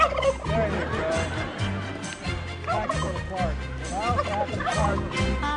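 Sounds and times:
turkey gobbling in warbling bursts: 0:00.0 - 0:00.5
laughter: 0:00.0 - 0:05.4.

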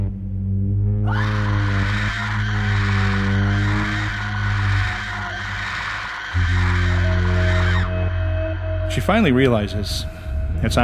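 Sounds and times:
low drone: 0:00.0 - 0:10.8
steady low hum: 0:00.0 - 0:10.8
high-pitched shrill screaming: 0:01.1 - 0:09.0
speech: 0:09.0 - 0:10.8.

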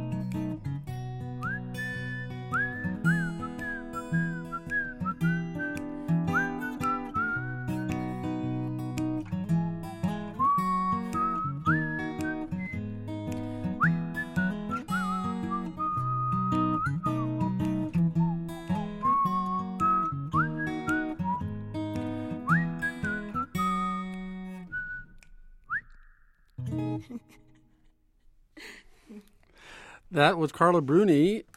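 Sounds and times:
guitar accompaniment: 0:00.0 - 0:27.9
finger snapping: 0:00.2 - 0:00.6, 0:01.4 - 0:26.6
woman whistling a melody in a light French pop tune: 0:01.4 - 0:08.5, 0:09.4 - 0:12.8, 0:13.8 - 0:21.6, 0:22.3 - 0:26.4
speech: 0:30.2 - 0:31.5.

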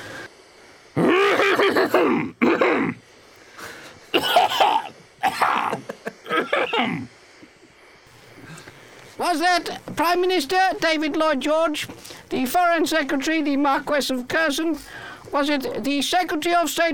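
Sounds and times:
harsh throaty coughs: 0:01.1 - 0:03.0, 0:04.1 - 0:07.1
speech: 0:01.8 - 0:03.0, 0:06.8 - 0:07.2, 0:09.2 - 0:16.9.

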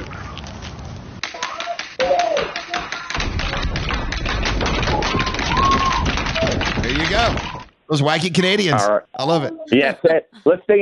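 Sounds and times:
hockey sticks banging on pavement in Canada to celebrate healthcare workers: 0:00.0 - 0:07.6
speech: 0:07.9 - 0:10.8.

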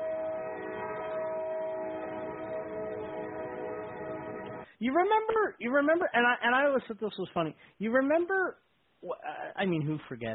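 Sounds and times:
train rumbling: 0:00.0 - 0:04.7
speech: 0:04.8 - 0:10.3.

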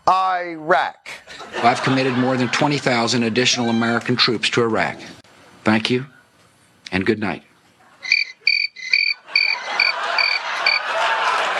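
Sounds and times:
speech: 0:00.1 - 0:06.2, 0:06.9 - 0:08.2
laughter: 0:01.3 - 0:04.0, 0:09.2 - 0:11.5
crickets chirping: 0:08.0 - 0:10.9.

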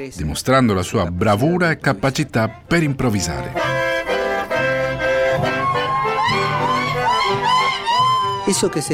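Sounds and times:
speech: 0:00.0 - 0:03.8, 0:08.5 - 0:08.9
steady accordion-like music: 0:03.0 - 0:08.9
short yells: 0:05.2 - 0:08.9
sapucai celebratory chamamé shout in wavering whoops: 0:05.4 - 0:08.9.

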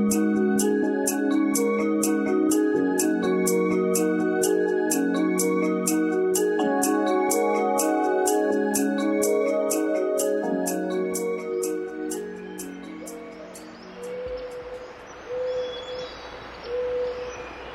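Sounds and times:
musical passage: 0:00.0 - 0:14.1
owl hooting in a California redwood forest: 0:00.0 - 0:17.6
faint birdsong in a California redwood forest: 0:00.0 - 0:17.7.

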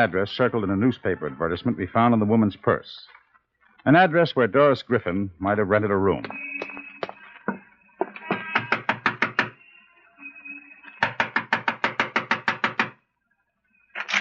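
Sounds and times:
speech: 0:00.0 - 0:03.2, 0:03.8 - 0:06.5
knocking on a door: 0:08.6 - 0:09.5, 0:11.0 - 0:13.0.

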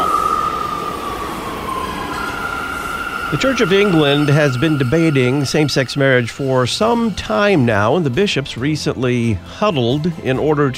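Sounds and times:
New York City subway train rumbling: 0:00.0 - 0:10.7
high metallic whine of subway train: 0:00.0 - 0:10.7
speech: 0:03.3 - 0:10.7.

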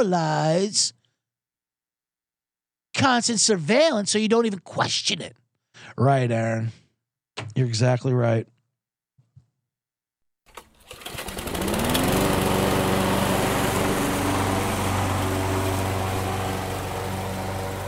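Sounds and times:
speech: 0:00.0 - 0:01.0, 0:03.0 - 0:06.8, 0:07.4 - 0:08.5
lawn mower engine starting and running: 0:10.5 - 0:17.8.

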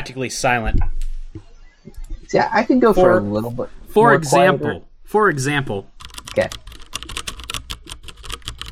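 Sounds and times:
speech: 0:00.1 - 0:01.1, 0:02.3 - 0:06.6
murmur of a voice: 0:02.8 - 0:04.8
typing on mechanical keyboard with tactile MX Brown switches: 0:06.0 - 0:08.6.

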